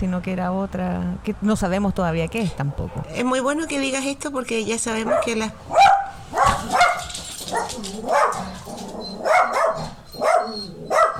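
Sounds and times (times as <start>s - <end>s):
speech: 0.0s - 5.8s, 7.6s - 8.8s
dog barking: 5.0s - 11.1s.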